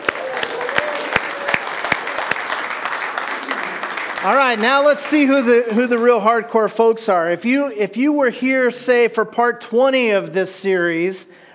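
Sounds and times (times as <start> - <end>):
church congregation applauding new members: 0.0 - 6.6
speech: 4.2 - 11.5.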